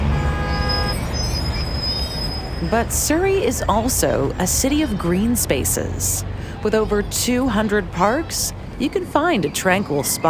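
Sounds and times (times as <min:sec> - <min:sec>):
car horn blaring: 0:00.0 - 0:02.2
engines idling in a traffic jam: 0:00.0 - 0:10.2
heavy traffic rumbling in a city jam: 0:00.0 - 0:10.2
speech: 0:02.6 - 0:10.2.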